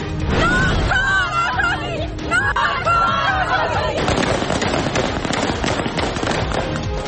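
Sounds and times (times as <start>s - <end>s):
crowd shouting at a women's protest gathering: 0.7s - 4.7s
rapid bursts of gunfire shot into the air: 4.0s - 7.0s.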